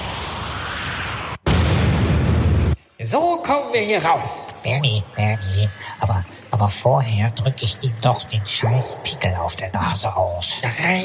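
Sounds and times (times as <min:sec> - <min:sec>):
explosion of a building being blown up: 0:00.0 - 0:02.8
speech: 0:03.1 - 0:11.0.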